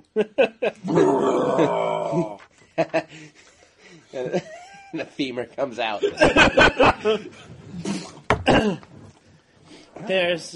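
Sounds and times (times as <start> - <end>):
speech: 0.1 - 2.4, 5.2 - 8.8, 10.1 - 10.5
laughter: 0.1 - 5.2, 5.9 - 7.8
person vocally imitating a loud monstrous burp: 0.8 - 2.4, 7.8 - 9.2.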